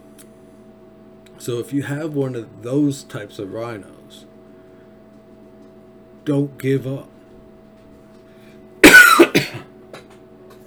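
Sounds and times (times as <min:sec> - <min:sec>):
speech: 0:01.4 - 0:04.3, 0:06.3 - 0:07.1
harsh raspy coughs: 0:08.8 - 0:09.7.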